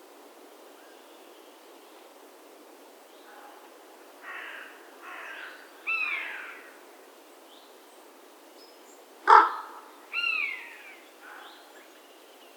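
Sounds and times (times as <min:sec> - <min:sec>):
Carrion crow cawing: 0:04.2 - 0:06.8, 0:09.3 - 0:11.6.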